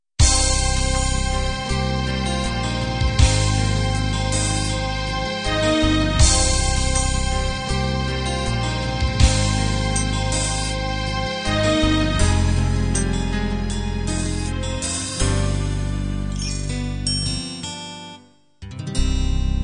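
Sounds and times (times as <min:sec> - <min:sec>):
guitar ballad: 0:00.2 - 0:19.6.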